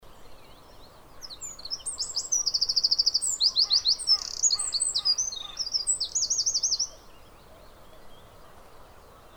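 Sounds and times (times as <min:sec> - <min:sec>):
soft background hiss: 0:00.0 - 0:09.3
Eurasian wren Troglodytes troglodytes singing high trills and chattering notes: 0:00.5 - 0:07.6.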